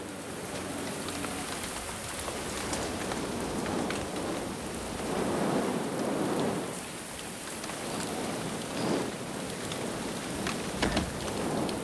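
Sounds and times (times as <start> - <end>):
heavy torrential rain pouring: 0.0 - 11.8
wind gusting: 3.2 - 11.8.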